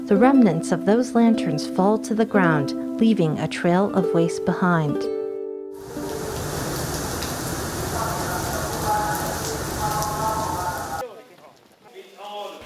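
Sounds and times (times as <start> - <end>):
speech: 0.1 - 5.2
steady rain falling: 5.8 - 12.6.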